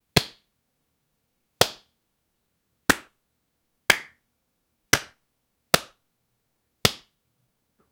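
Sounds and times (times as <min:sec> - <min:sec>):
playful slap on the back in jest: 0:01.6 - 0:01.9, 0:02.9 - 0:03.2, 0:03.9 - 0:04.2, 0:04.9 - 0:06.0, 0:06.8 - 0:07.2.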